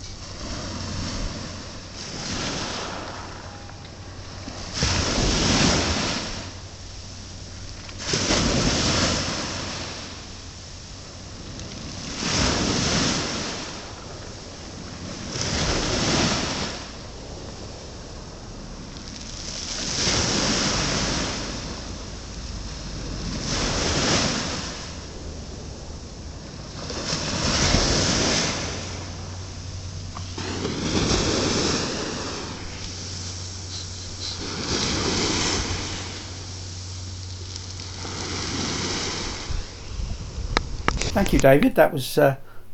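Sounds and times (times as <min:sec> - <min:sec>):
low wind rumble: 0:00.0 - 0:41.2
sea waves breaking at low tide by a pier: 0:00.0 - 0:42.7
speech: 0:41.2 - 0:42.4.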